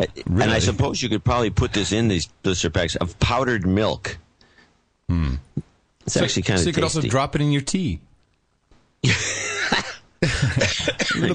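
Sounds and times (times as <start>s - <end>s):
speech: 0.0s - 4.2s, 5.1s - 8.1s, 9.0s - 11.3s
laughter: 9.0s - 11.3s
person coughing: 9.5s - 11.3s.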